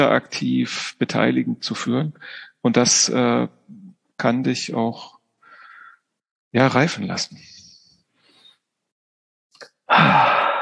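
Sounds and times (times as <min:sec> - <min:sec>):
speech: 0:00.0 - 0:05.2, 0:06.5 - 0:07.5, 0:09.9 - 0:10.3
breath blown into a microphone: 0:02.2 - 0:02.6, 0:05.4 - 0:06.1, 0:07.5 - 0:08.6, 0:09.9 - 0:10.6.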